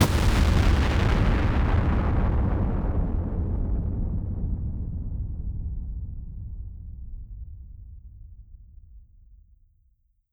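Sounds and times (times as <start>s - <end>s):
large explosion: 0.0s - 6.4s.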